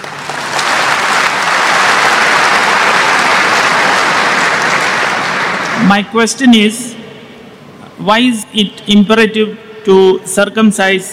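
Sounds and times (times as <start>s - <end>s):
large crowd applauding: 0.0s - 5.9s
speech: 5.9s - 7.0s, 8.0s - 11.1s.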